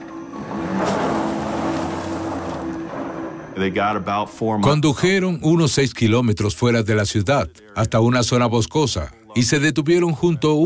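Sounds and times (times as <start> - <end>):
broad road rumble: 0.0 - 3.8
car engine humming as the car drives away: 0.0 - 3.8
speech: 3.6 - 10.6.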